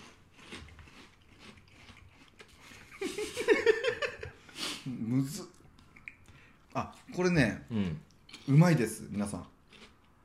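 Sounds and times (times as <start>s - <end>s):
chewing a soy-sauce-flavoured food with moist mouth sounds: 0.0s - 3.1s, 5.5s - 7.2s, 8.0s - 10.2s
laughter: 2.9s - 4.5s
speech: 5.1s - 5.5s, 6.8s - 9.5s.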